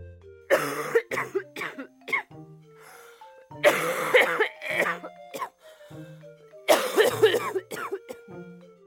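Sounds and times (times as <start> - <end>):
old man coughing loudly: 0.5 - 2.3, 3.6 - 5.5, 6.7 - 8.2.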